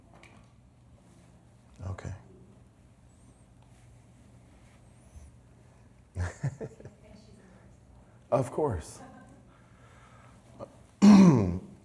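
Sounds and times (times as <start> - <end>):
speech: 8.3 - 9.1
woman clearing her throat: 11.0 - 11.7.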